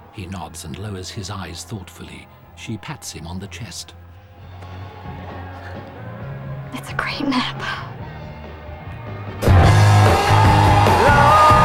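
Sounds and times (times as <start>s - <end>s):
speech: 0.2s - 4.0s, 6.7s - 7.9s
loud music: 9.2s - 11.6s
people yelling and whooping: 9.4s - 11.6s.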